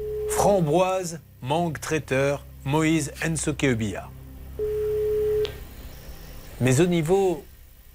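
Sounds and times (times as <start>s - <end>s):
telephone ringback tone of an outgoing call: 0.0s - 0.4s, 4.6s - 5.5s
speech: 0.4s - 4.7s, 6.6s - 7.5s.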